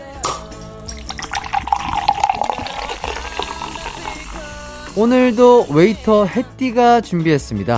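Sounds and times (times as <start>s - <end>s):
cola poured into a glass: 0.0s - 5.8s
speech: 5.0s - 7.7s.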